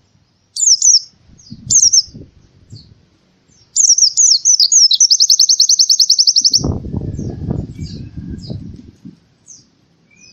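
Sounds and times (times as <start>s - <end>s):
canary song chirping twittering and trilling: 0.6s - 2.2s, 3.5s - 8.6s.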